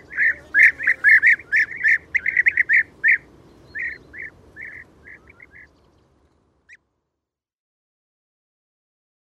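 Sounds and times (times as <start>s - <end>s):
European bee-eater calls: 0.0s - 5.8s.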